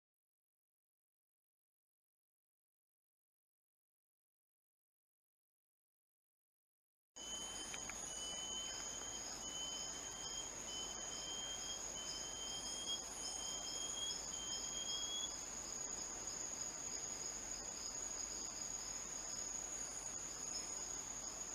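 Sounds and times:
antthrush song of clear whistled notes: 7.2 - 15.3
shrill insect drone: 7.2 - 21.4.

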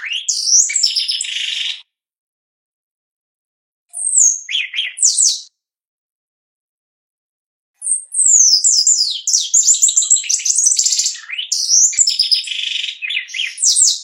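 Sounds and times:
shiny cowbird song: 0.0 - 1.9, 3.9 - 5.5, 7.8 - 13.9.

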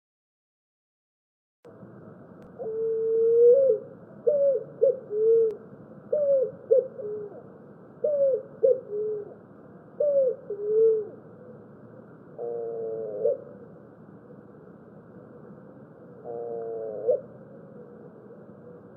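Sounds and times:
Picazuro pigeon singing deep hooting coos: 2.4 - 13.8, 16.0 - 18.9.

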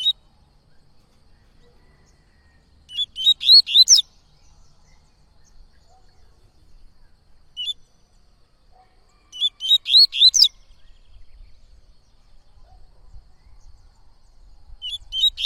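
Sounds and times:
yellow-bellied seedeater singing: 2.9 - 4.1, 9.4 - 11.4, 14.8 - 15.4.

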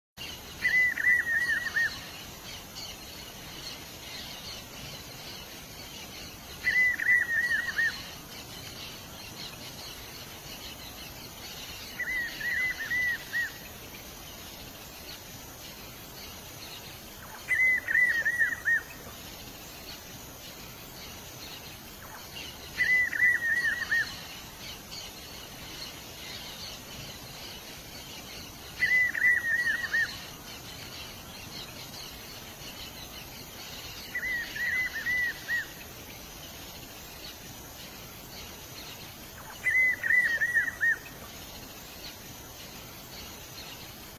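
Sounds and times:
rapazinho do chaco singing: 0.2 - 44.1.

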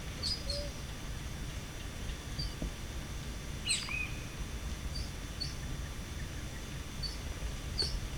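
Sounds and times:
black-legged dacnis singing: 0.2 - 2.6, 3.6 - 8.0.

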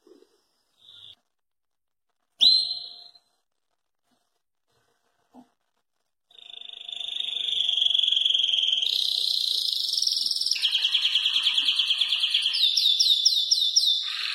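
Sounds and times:
German crested canary singing: 6.3 - 14.3.

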